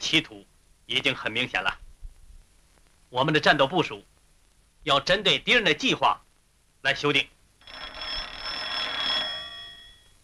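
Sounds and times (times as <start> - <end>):
speech: 0.0 - 1.8, 3.1 - 4.1, 4.8 - 6.2, 6.8 - 7.8
old-fashioned telephone bell ringing: 7.6 - 10.2.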